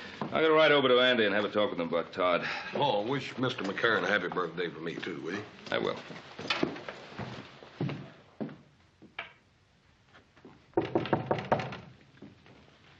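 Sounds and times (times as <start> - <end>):
speech: 0.3 - 6.7
knocking on an unlocked wooden door: 10.8 - 11.9.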